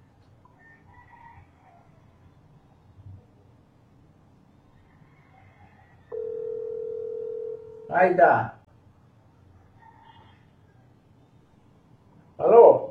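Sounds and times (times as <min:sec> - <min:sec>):
faint low noise: 0:00.0 - 0:12.9
video call ringing tone: 0:06.1 - 0:08.2
speech: 0:07.9 - 0:08.6.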